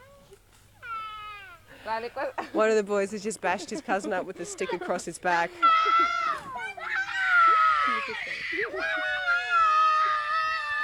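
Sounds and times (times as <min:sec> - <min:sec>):
child crying: 0:00.8 - 0:01.7, 0:05.5 - 0:10.8
speech: 0:01.8 - 0:06.2
laughter: 0:03.4 - 0:10.4
boys shouting: 0:05.5 - 0:10.8.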